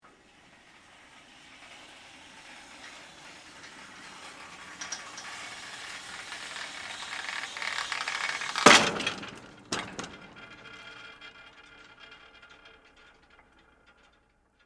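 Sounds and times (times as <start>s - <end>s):
theatre stage fly rail raising: 0.1s - 11.4s.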